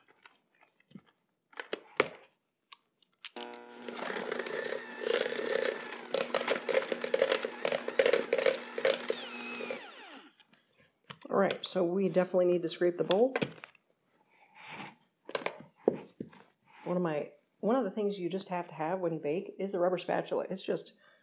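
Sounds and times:
hand mixer blending cream cheese and butter in a bowl: 3.4s - 10.4s
speech: 11.7s - 13.6s, 16.9s - 21.1s.

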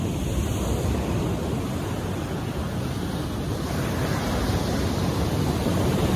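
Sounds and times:
ocean surf crashing and receding: 0.0s - 6.1s.

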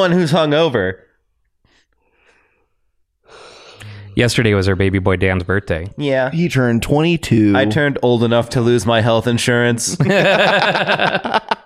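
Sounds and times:
speech: 0.0s - 1.1s, 4.2s - 11.6s
breathy yawn with faint voiced tone: 3.3s - 4.2s
laughter: 9.9s - 11.6s.

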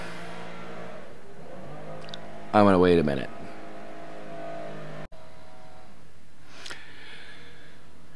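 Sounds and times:
leaf blower revving outside a window: 0.0s - 5.1s
speech: 2.5s - 3.4s.

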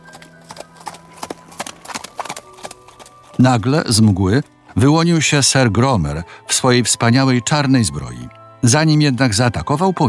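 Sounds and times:
horse stamping its hooves: 0.0s - 4.6s
speech: 3.4s - 10.0s.

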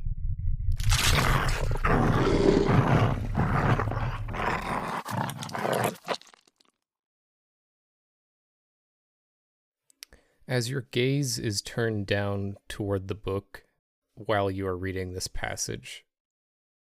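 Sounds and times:
animals growling and snarling: 0.8s - 6.6s
speech: 10.5s - 16.1s.

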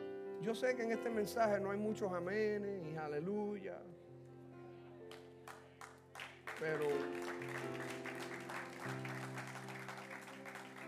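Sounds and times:
speech: 0.4s - 4.0s, 6.6s - 7.9s
church audience clapping during a sermon: 5.1s - 10.8s.

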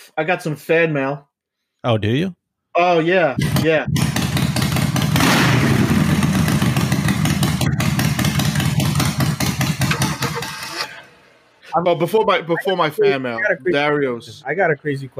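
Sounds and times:
speech: 0.2s - 4.1s, 11.7s - 15.1s
motorcycle engine revving and chugging: 3.4s - 10.7s
laughter: 9.7s - 14.2s.

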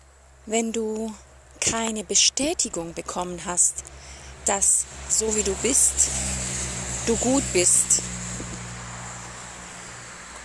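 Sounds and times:
speech: 0.5s - 6.4s, 7.1s - 8.2s
cars driving past nearby: 3.7s - 10.4s.

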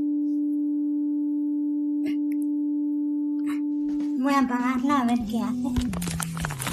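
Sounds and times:
low buzzing electronic tone from a light-detector app on a mobile phone: 0.0s - 4.2s
speech: 4.2s - 6.6s.

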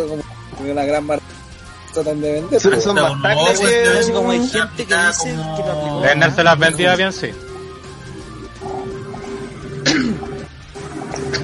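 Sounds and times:
speech: 0.0s - 1.4s, 2.0s - 7.5s
nervous cough: 9.8s - 10.4s.

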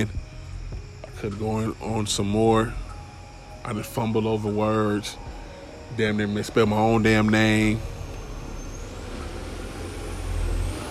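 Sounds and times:
speech: 0.0s - 0.2s, 1.2s - 2.8s, 3.6s - 7.9s
broadband road noise: 0.0s - 10.9s
heavy truck rumbling past: 4.4s - 10.9s.

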